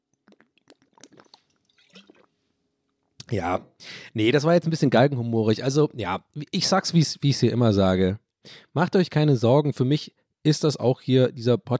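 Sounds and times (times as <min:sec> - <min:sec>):
quiet sipping and gulping of water: 0:00.0 - 0:02.4
speech: 0:03.3 - 0:11.7.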